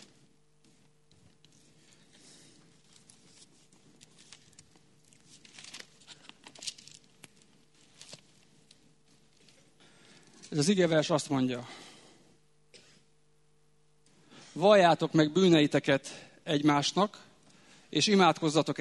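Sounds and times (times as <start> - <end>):
Bible pages being turned by several people: 0.0 - 9.7
speech: 10.5 - 11.8, 14.6 - 17.3, 17.9 - 18.7.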